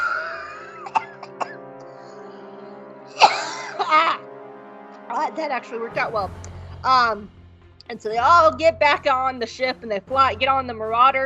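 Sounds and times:
person coughing: 0.2 - 1.6, 3.2 - 4.2
person clearing throat: 0.4 - 1.6, 3.2 - 4.1
speech: 5.4 - 11.2.

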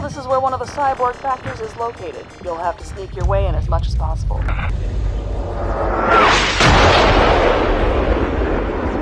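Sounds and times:
speech: 0.1 - 6.6
loud explosion with rolling rumble: 4.7 - 9.0.

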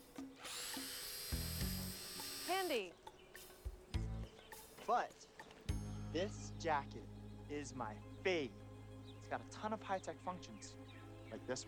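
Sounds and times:
electric chainsaw running: 0.0 - 2.9
speech: 2.6 - 3.0, 4.9 - 5.3, 6.1 - 8.6, 9.3 - 11.6.

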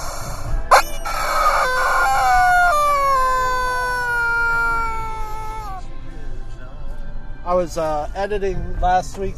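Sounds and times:
rubber screaming chicken toy squawking: 0.0 - 5.8
speech: 7.6 - 9.3.

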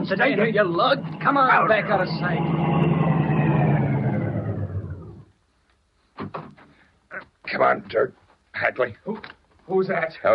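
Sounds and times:
car engine roaring and slowing: 0.0 - 5.4
speech: 0.1 - 2.8, 7.5 - 10.3.

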